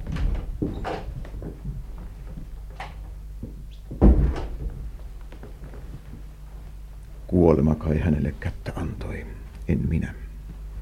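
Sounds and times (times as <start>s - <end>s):
wooden door opening and closing: 0.1s - 1.1s, 4.0s - 4.8s
speech: 7.5s - 10.3s.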